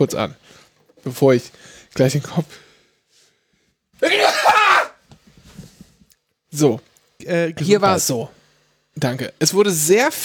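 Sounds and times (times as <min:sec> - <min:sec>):
speech: 0:00.0 - 0:02.6, 0:04.0 - 0:04.4, 0:06.5 - 0:08.4, 0:09.0 - 0:10.2
person sneezing: 0:04.0 - 0:05.0.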